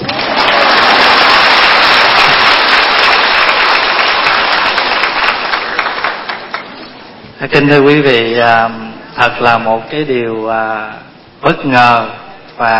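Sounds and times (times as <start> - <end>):
audience applause at a lecture in a hall: 0.0 - 6.8
speech: 7.5 - 12.7.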